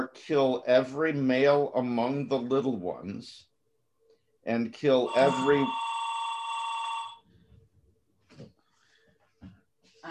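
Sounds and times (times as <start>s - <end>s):
speech: 0.2s - 3.5s, 4.4s - 5.9s
telephone ringing: 5.1s - 7.4s.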